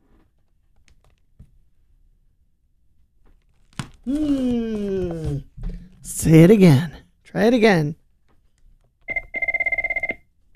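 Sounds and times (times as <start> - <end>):
speech: 4.1 - 4.7, 6.1 - 8.0
telephone ringing tone after a number is dialed: 9.1 - 10.5.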